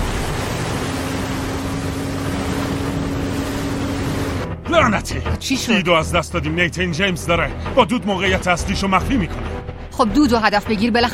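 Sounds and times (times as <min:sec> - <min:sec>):
engines running at maximum power: 0:00.0 - 0:05.4
speech: 0:04.7 - 0:11.1.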